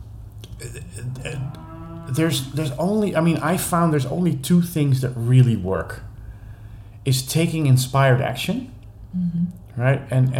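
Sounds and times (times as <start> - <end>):
cows mooing in low drawn-out calls: 0.6 - 3.0
speech: 0.6 - 6.1, 7.1 - 10.3.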